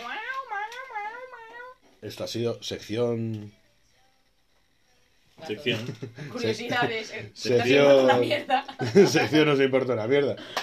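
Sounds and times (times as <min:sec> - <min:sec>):
female cat in pain meowing: 0:00.0 - 0:01.8
speech: 0:02.0 - 0:03.6, 0:05.5 - 0:10.6
laughter: 0:08.1 - 0:09.6.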